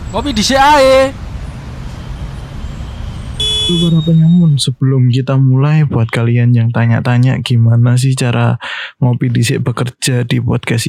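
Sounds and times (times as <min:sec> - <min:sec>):
low rumble of congested road traffic: 0:00.0 - 0:04.7
speech: 0:00.1 - 0:01.2, 0:03.7 - 0:10.8
loud brassy car horn blaring: 0:03.4 - 0:04.3.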